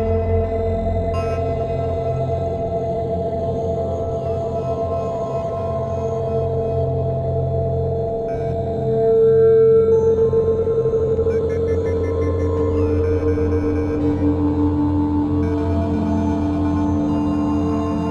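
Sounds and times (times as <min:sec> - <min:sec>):
modular synth oscillator drone washed into thick reverb: 0:00.1 - 0:18.0.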